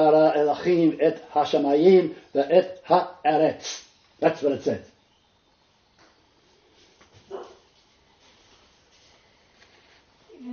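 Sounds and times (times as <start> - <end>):
speech: 0.0 - 4.9
low hiss: 0.0 - 10.5
dog giving a short bark-like yelp: 7.3 - 7.6.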